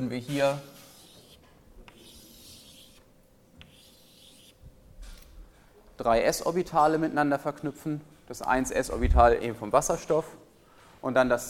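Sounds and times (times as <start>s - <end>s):
speech: 0.0s - 0.8s, 6.0s - 10.4s, 11.0s - 11.4s
scratching strokes of drawing on a board during a chemistry lecture: 0.0s - 4.6s.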